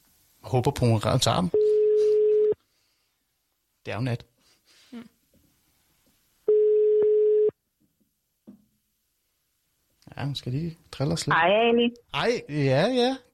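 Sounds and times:
speech: 0.5s - 1.7s, 3.9s - 4.3s, 4.9s - 5.2s, 10.2s - 13.3s
telephone ringback tone while placing a call: 1.6s - 2.6s, 6.5s - 7.5s.

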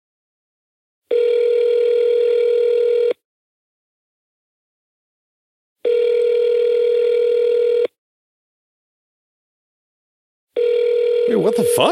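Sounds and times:
phone line ringing through a speaker: 1.1s - 3.1s, 5.8s - 7.8s, 10.6s - 11.8s
speech: 11.4s - 11.8s.

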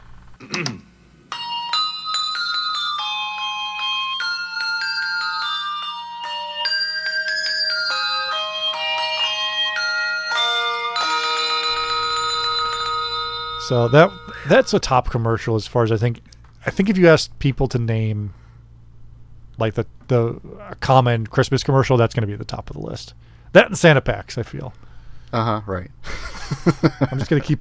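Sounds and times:
speech: 0.4s - 0.9s, 13.7s - 18.4s, 19.6s - 27.6s
Christmas bells ringing a lively melody: 1.3s - 14.8s
laughter: 26.0s - 27.6s.

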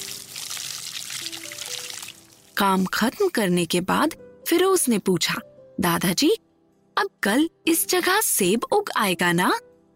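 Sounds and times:
water poured in a steady stream onto soil: 0.0s - 2.6s
speech: 2.6s - 6.4s, 7.0s - 9.7s.

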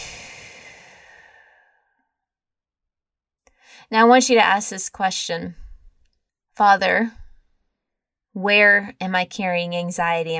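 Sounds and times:
long airy exhale during a guided breathing exercise: 0.0s - 2.0s
speech: 3.8s - 5.6s, 6.6s - 7.2s, 8.4s - 10.3s.

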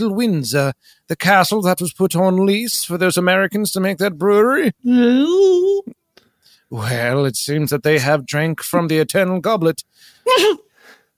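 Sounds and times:
speech: 0.0s - 6.0s, 6.7s - 10.7s
single sharp sneeze: 10.3s - 10.7s.

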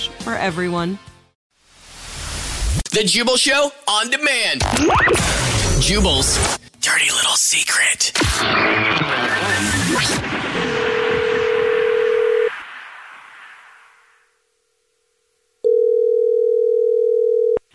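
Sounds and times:
speech: 0.2s - 1.1s, 2.9s - 10.7s
dense rush of noise: 9.2s - 14.4s
telephone dial tone of an outgoing call: 11.0s - 12.5s, 15.6s - 17.6s.

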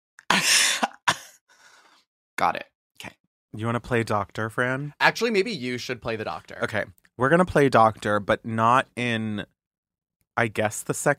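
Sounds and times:
person coughing: 0.3s - 1.4s
speech: 0.4s - 0.6s, 2.4s - 9.5s, 10.4s - 11.1s.

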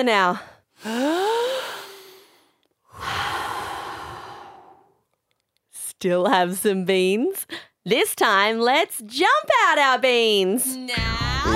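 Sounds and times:
speech: 0.0s - 1.3s, 6.0s - 11.5s
people breathing heavily to catch their breath after an energetic movement song: 0.8s - 5.0s.

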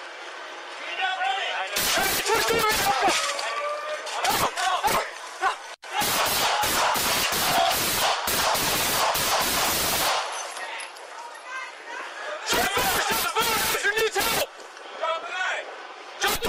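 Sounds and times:
police officers' raised indistinct voices ordering a man: 1.0s - 8.1s, 11.4s - 15.6s, 16.2s - 16.4s
beanbag shotgun blasts fired by police officers: 6.0s - 10.4s.

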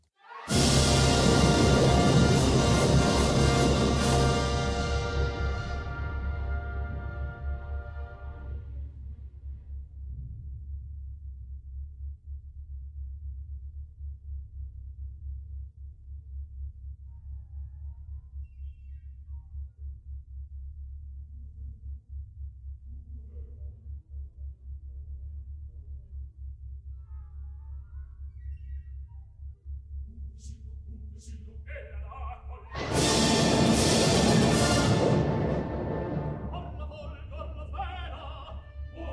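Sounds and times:
full orchestra playing the opening of an opera: 0.3s - 8.6s, 32.7s - 37.1s.

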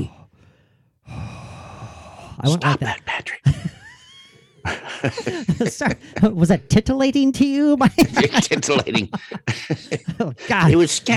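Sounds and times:
person imitating heavy creepy rasping breathing: 0.0s - 2.4s
speech: 2.4s - 3.5s, 4.7s - 11.1s
laughter: 3.5s - 6.0s, 8.0s - 11.0s.

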